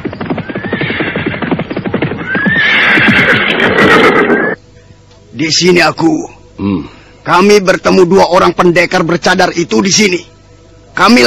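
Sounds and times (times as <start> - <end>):
horses galloping with mounted riders: 0.0 - 4.6
speech: 5.4 - 10.3, 11.0 - 11.2.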